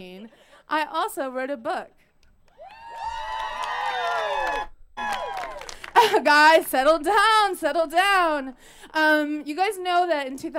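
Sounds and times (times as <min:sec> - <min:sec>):
speech: 0:00.0 - 0:02.0, 0:06.0 - 0:10.5
standing crowd cheering and whooping: 0:02.5 - 0:06.1
laughter: 0:05.7 - 0:06.3.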